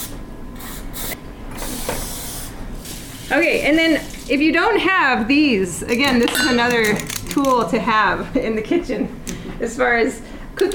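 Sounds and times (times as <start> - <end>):
cooking spray sprayed onto a muffin pan: 0.0 - 4.3
speech: 3.3 - 10.7.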